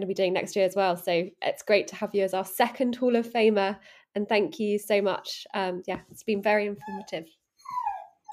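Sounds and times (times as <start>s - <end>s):
speech: 0.0s - 7.9s
dog letting out a high drawn-out whining yelp: 7.6s - 8.3s.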